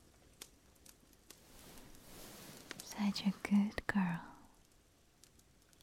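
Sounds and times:
soft pats on someone's head: 0:01.4 - 0:03.6
speech: 0:03.0 - 0:04.3.

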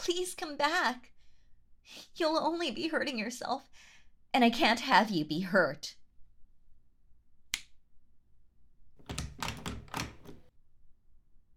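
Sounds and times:
speech: 0:00.1 - 0:01.1, 0:01.9 - 0:06.0
door lock clicking and clunking as a door is locked: 0:09.0 - 0:10.5.

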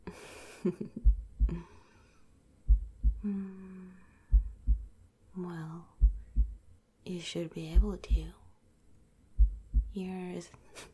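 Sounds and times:
faint low hum: 0:00.0 - 0:10.9
speech: 0:00.6 - 0:01.7, 0:03.2 - 0:03.8, 0:07.1 - 0:08.4, 0:10.0 - 0:10.9
heartbeat thumping: 0:00.9 - 0:01.7, 0:02.6 - 0:03.4, 0:04.3 - 0:05.0, 0:05.9 - 0:06.7, 0:07.7 - 0:08.4, 0:09.4 - 0:10.0.

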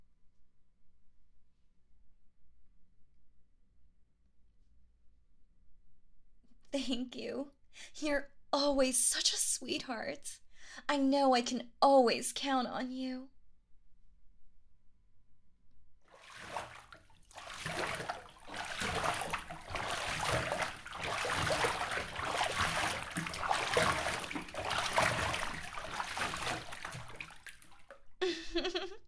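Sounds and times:
speech: 0:06.7 - 0:13.3
water splashing as someone gets into a bath of warm water: 0:16.1 - 0:28.8
laughter: 0:28.2 - 0:29.0.

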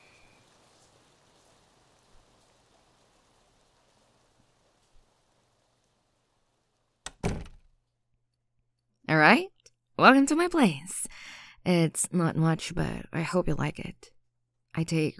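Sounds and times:
steady rain falling outdoors: 0:00.0 - 0:07.2
loud door thud: 0:07.1 - 0:07.7
speech: 0:09.1 - 0:14.2, 0:14.8 - 0:15.1.

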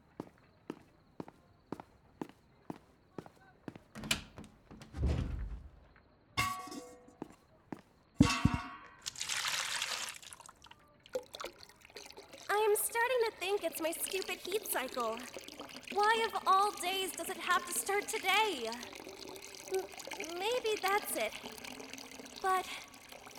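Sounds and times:
footsteps crossing a room: 0:00.0 - 0:07.4
glassware clinking and clanking: 0:06.4 - 0:07.1, 0:08.2 - 0:09.0
water poured into a glass: 0:09.0 - 0:23.3
speech: 0:13.4 - 0:19.0, 0:19.7 - 0:21.6, 0:22.4 - 0:22.9.

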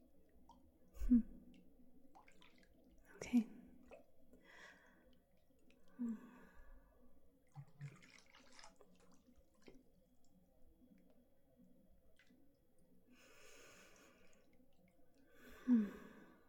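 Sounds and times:
water sloshing and splashing in a bath: 0:00.0 - 0:15.6
faint breathy sounds: 0:03.1 - 0:07.3, 0:13.0 - 0:16.4.

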